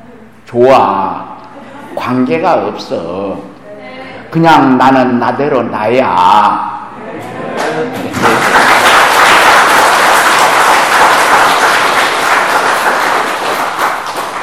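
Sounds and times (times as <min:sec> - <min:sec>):
speech: 0:00.5 - 0:01.3, 0:02.0 - 0:03.5, 0:04.3 - 0:08.4
audience applause at a Zen teacher's talk: 0:07.6 - 0:14.4.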